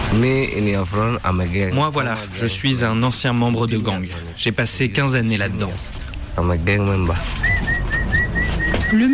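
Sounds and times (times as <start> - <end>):
speech: 0.1 - 7.8, 8.9 - 9.1
pigeons cooing and calling behind a house: 7.2 - 9.1.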